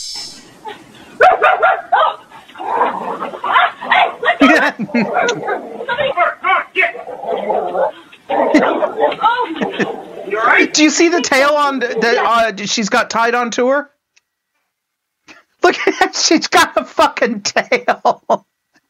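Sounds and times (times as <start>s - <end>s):
people laughing: 0.5s - 12.6s, 15.7s - 16.2s, 17.6s - 18.4s
dog barking: 1.2s - 6.2s, 7.6s - 9.9s
speech: 10.8s - 14.0s, 15.6s - 18.5s.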